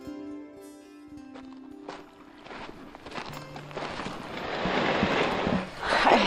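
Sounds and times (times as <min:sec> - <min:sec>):
shuffling steps of someone clambering into a small boat: 0:01.3 - 0:06.1
water sloshing at the water's edge: 0:02.4 - 0:06.2
broad rush of wind or lapping water: 0:03.8 - 0:06.2.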